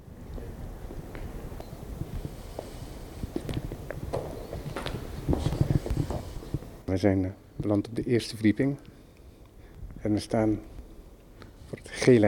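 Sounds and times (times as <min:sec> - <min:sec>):
low indoor rumble: 0:00.0 - 0:12.2
footsteps climbing a staircase: 0:02.5 - 0:06.7
speech: 0:06.9 - 0:08.9, 0:10.0 - 0:10.7, 0:11.9 - 0:12.2.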